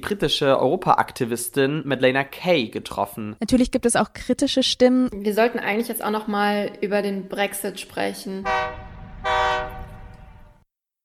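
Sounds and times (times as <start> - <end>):
speech: 0.0 - 8.7
low rumbling train station background in Brussels: 6.2 - 10.6
train horn at Brussels station: 8.4 - 10.6.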